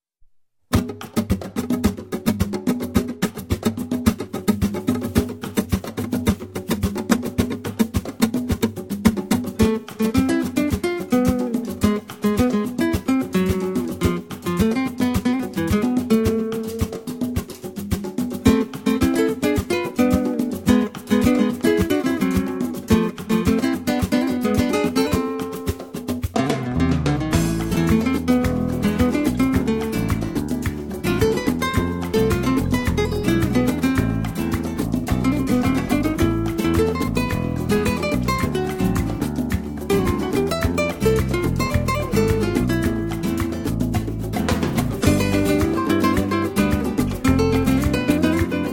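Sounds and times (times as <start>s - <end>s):
jazz guitar: 0.7s - 48.7s.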